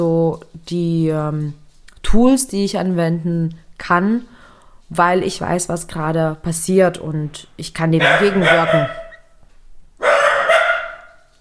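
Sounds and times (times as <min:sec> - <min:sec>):
speech: 0:00.0 - 0:09.0
dachshund barking at a noise in the stairwell: 0:08.0 - 0:09.3, 0:10.0 - 0:11.3.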